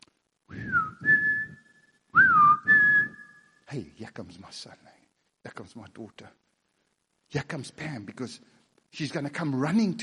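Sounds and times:
person whistling melodic phrases: 0:00.5 - 0:03.6
speech: 0:03.7 - 0:06.4, 0:07.3 - 0:10.0.

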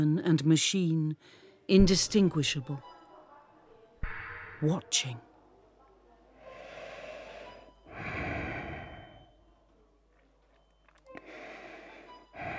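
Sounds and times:
speech: 0:00.0 - 0:02.9, 0:04.6 - 0:05.3
breathing inside a protective suit with a visor: 0:06.4 - 0:09.4, 0:11.1 - 0:12.5.

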